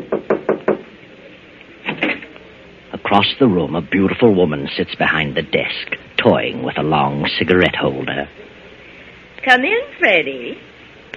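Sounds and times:
knocking on a door: 0.0s - 0.8s
speech: 3.1s - 8.4s, 9.4s - 10.7s.

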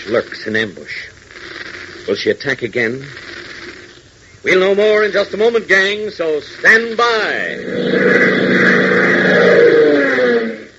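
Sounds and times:
speech: 0.0s - 1.2s, 2.1s - 3.2s, 4.4s - 8.6s
aircraft twin jet engines roaring during climb: 7.4s - 10.7s.

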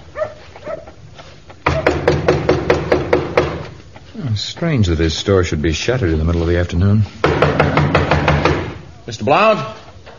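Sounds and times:
loud pounding knocks on a door: 1.6s - 3.8s, 7.2s - 8.9s
speech: 4.4s - 7.9s, 9.1s - 9.8s.

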